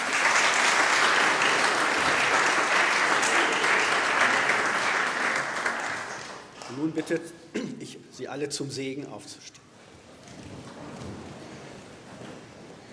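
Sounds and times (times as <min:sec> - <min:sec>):
sizable crowd applauding: 0:00.0 - 0:06.9
speech: 0:06.8 - 0:09.6.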